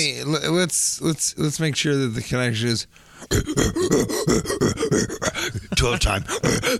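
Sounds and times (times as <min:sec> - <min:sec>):
speech: 0:00.0 - 0:06.7
voice imitating a comedian's signature grunt: 0:03.2 - 0:06.7.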